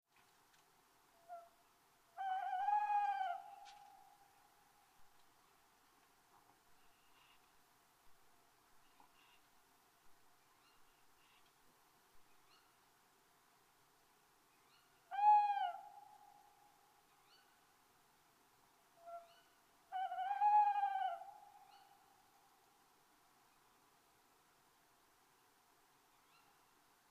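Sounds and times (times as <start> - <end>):
tawny owl calling: 1.2 - 4.5, 6.9 - 7.5, 8.8 - 9.5, 14.7 - 17.6, 19.0 - 22.2.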